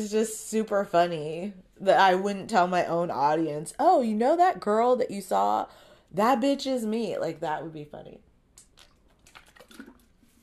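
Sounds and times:
speech: 0:00.0 - 0:08.3
person sipping water with mouth clicks and a gulp: 0:08.6 - 0:10.4.

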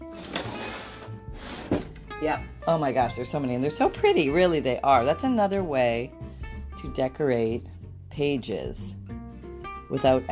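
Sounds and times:
lower drawer full of paper punches sliding open: 0:00.0 - 0:02.1
speech: 0:02.2 - 0:09.0, 0:09.9 - 0:10.3.

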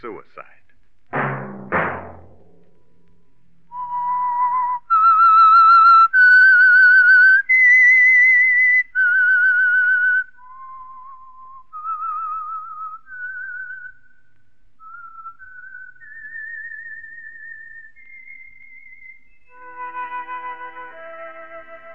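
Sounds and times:
speech: 0:00.0 - 0:00.6
thump: 0:01.1 - 0:02.8
whistled melody: 0:03.7 - 0:14.2, 0:14.8 - 0:21.9.

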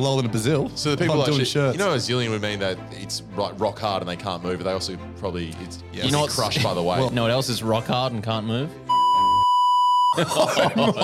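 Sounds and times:
speech: 0:00.0 - 0:09.0, 0:10.2 - 0:11.0
high-pitched censor bleep tone: 0:08.9 - 0:10.2
laughter: 0:10.1 - 0:11.0.

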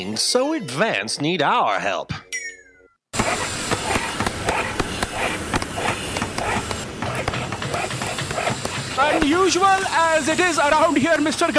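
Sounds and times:
speech: 0:00.0 - 0:02.2, 0:09.0 - 0:11.5
dog making noisy sounds with rough breaths: 0:03.2 - 0:09.3.

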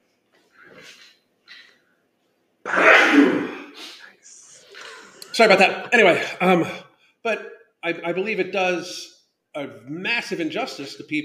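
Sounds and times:
loud sneeze of a person with lights shining in their face: 0:02.6 - 0:04.1
laughter: 0:04.6 - 0:06.7
speech: 0:05.4 - 0:11.2.

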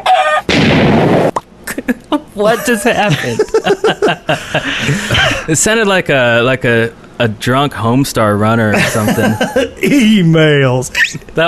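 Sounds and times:
chicken squawk: 0:00.0 - 0:00.5
harsh crackling noise burst: 0:00.5 - 0:01.8
laughter: 0:01.7 - 0:05.5, 0:08.7 - 0:10.1
speech: 0:02.4 - 0:11.4.

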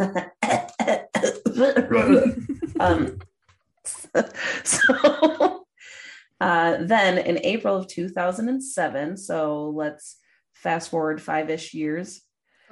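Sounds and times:
person with a scratchy throat clearing throat: 0:00.0 - 0:03.2
speech: 0:00.0 - 0:03.2, 0:04.2 - 0:05.6, 0:06.4 - 0:12.3
person with a scratchy throat coughing: 0:00.4 - 0:03.2
laughter: 0:01.7 - 0:03.2, 0:04.2 - 0:05.6.

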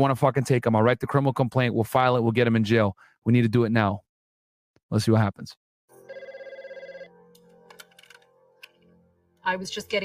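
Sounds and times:
speech: 0:00.0 - 0:04.0, 0:04.9 - 0:05.6, 0:09.5 - 0:10.0
old telephone bell ringing: 0:06.0 - 0:07.4.

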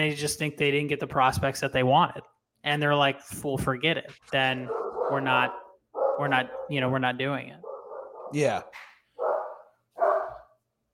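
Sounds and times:
speech: 0:00.0 - 0:05.6, 0:06.2 - 0:07.6, 0:08.3 - 0:08.9
German Shepherd of about 70 pounds barking: 0:04.6 - 0:06.9, 0:07.6 - 0:08.4, 0:09.2 - 0:10.6.

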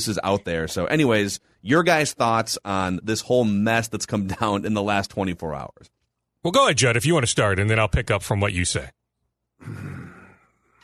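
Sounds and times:
speech: 0:00.0 - 0:09.0, 0:09.6 - 0:10.0
man groaning: 0:09.6 - 0:10.8.

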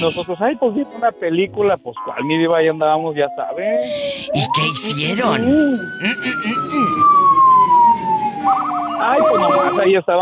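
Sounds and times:
speech: 0:00.0 - 0:07.3, 0:08.4 - 0:10.1
police siren wailing: 0:02.0 - 0:10.0
police siren honking bursts: 0:03.8 - 0:09.9.

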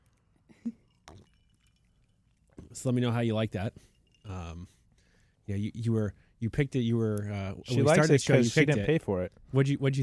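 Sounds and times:
glasses of whiskey clinking together in a toast: 0:00.5 - 0:05.1
speech: 0:02.8 - 0:04.8, 0:05.5 - 0:10.0.

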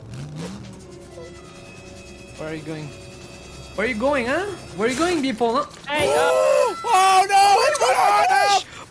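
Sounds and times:
synthetic video game car engine revving: 0:00.0 - 0:05.3
speech: 0:02.4 - 0:03.0, 0:03.8 - 0:08.7.

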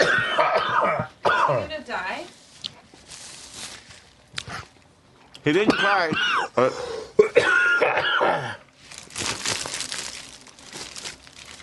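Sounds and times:
rough throaty coughs: 0:00.0 - 0:01.8, 0:05.6 - 0:06.6, 0:07.2 - 0:08.7
dry crinkling rustling noise: 0:02.0 - 0:04.9, 0:08.7 - 0:11.6
speech: 0:05.4 - 0:08.6.

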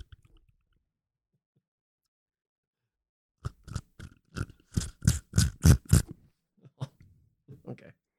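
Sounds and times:
wet sucking slurps: 0:03.4 - 0:06.1.

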